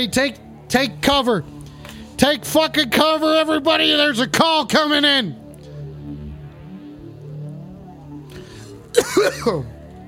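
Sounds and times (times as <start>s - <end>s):
speech: 0.0s - 1.6s, 2.2s - 5.4s, 9.0s - 9.7s
person coughing harshly: 8.9s - 9.8s.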